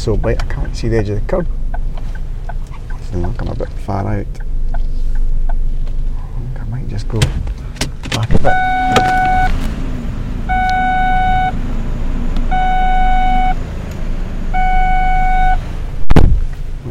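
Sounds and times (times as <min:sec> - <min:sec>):
speech: 0:00.0 - 0:01.7, 0:03.1 - 0:04.4, 0:06.9 - 0:07.5, 0:08.2 - 0:09.6
low car engine rumble: 0:00.0 - 0:16.9
car door-open warning chime: 0:08.4 - 0:09.6, 0:10.5 - 0:11.6, 0:12.5 - 0:13.6, 0:14.6 - 0:15.6
brief thump: 0:16.1 - 0:16.4.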